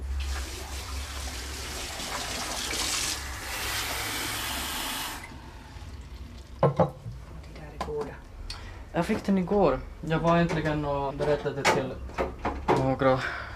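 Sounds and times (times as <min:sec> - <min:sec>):
water running from a tap: 0:00.2 - 0:06.4
speech: 0:09.0 - 0:12.2, 0:12.8 - 0:13.4.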